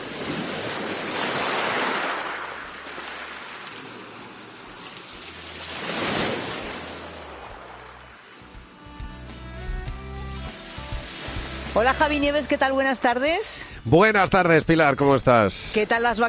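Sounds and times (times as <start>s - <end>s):
sea waves rolling onto the shore: 0.0s - 13.8s
speech: 11.8s - 16.2s.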